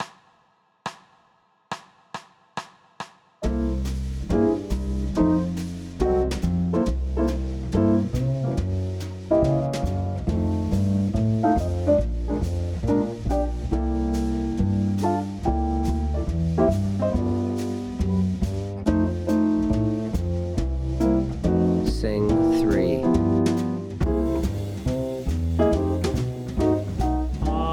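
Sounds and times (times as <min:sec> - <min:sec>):
blues tenor melody in C major: 0:03.4 - 0:27.7.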